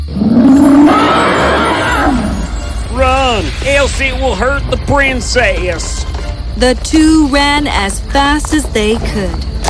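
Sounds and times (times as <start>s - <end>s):
monstrous dragon roar in a cave: 0.1s - 2.4s
speech: 3.8s - 9.5s.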